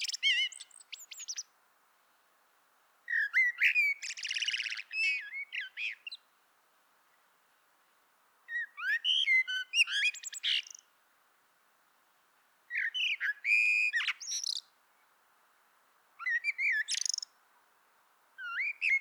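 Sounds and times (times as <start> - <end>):
common blackbird singing: 0.0 - 1.4, 3.1 - 6.2, 8.5 - 10.8, 12.7 - 14.6, 16.2 - 17.3, 18.4 - 18.9.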